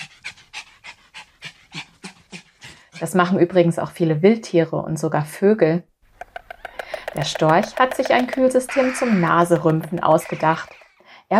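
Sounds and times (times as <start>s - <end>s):
overheated dog panting with its tongue out to cool down: 0.0s - 3.4s, 6.3s - 11.0s
speech: 3.0s - 5.9s, 7.2s - 11.3s.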